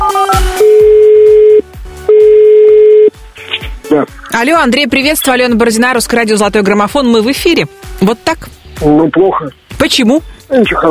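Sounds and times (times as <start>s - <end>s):
telephone dialing tones while a call is placed on air: 0.0s - 3.1s
speech: 3.9s - 10.8s.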